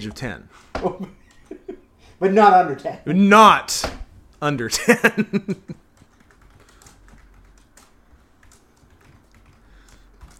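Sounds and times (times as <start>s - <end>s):
speech: 0.0s - 1.2s, 2.2s - 5.8s
fast typing on a computer keyboard: 5.3s - 10.3s.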